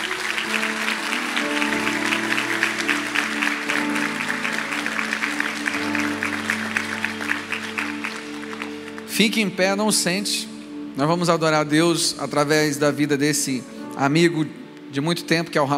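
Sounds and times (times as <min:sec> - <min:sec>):
large crowd clapping loudly: 0:00.0 - 0:09.5
sustained keyboard chords: 0:00.0 - 0:15.7
speech: 0:09.2 - 0:15.7.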